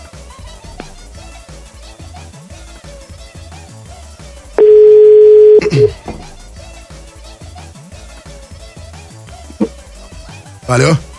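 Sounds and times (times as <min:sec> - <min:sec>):
short telephone beep: 0:04.6 - 0:06.0
telephone dial tone as a call is placed: 0:04.6 - 0:06.0
speech: 0:10.7 - 0:11.1.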